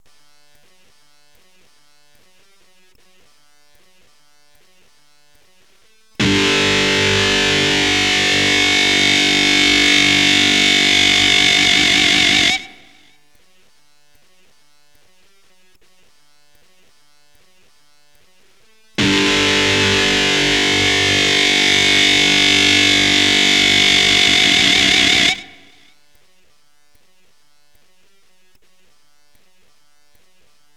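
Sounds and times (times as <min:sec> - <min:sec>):
electric guitar power chord: 0:06.2 - 0:13.1, 0:19.0 - 0:25.8.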